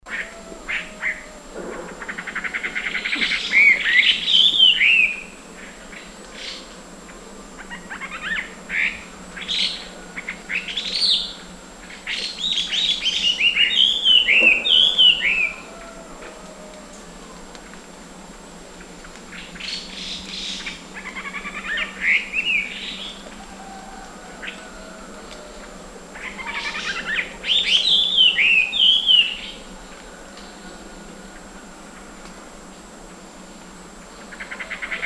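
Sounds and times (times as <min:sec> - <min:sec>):
Chinese Hwamei Garrulax canorus canorus singing in Guangxi Beishan: 0:00.1 - 0:06.7, 0:07.6 - 0:16.0, 0:19.3 - 0:31.5.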